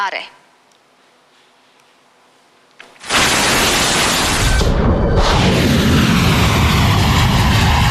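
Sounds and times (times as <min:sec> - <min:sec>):
speech: 0:00.0 - 0:00.4
large aircraft jet engine roar: 0:03.0 - 0:07.8.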